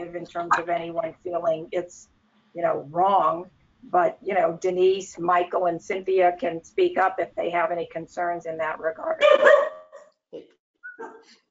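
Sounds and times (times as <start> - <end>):
speech: 0.1 - 9.7, 10.3 - 11.4
dog barking and whining: 9.2 - 10.0, 11.0 - 11.3.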